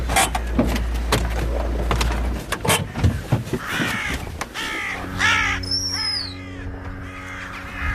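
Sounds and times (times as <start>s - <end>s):
steady low hum: 0.0s - 7.9s
carrion crows cawing: 2.7s - 7.9s.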